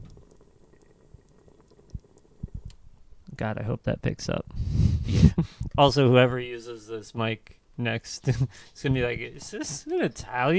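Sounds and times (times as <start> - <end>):
liquid just starting to boil on a white stove: 0.0 - 3.2
speech: 3.4 - 10.5.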